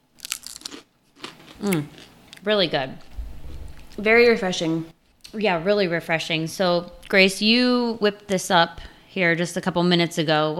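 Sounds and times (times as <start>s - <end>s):
crisp crunching of someone biting into chips loaded with watermelon salsa: 0.2s - 2.4s
speech: 1.6s - 3.1s, 4.0s - 10.5s.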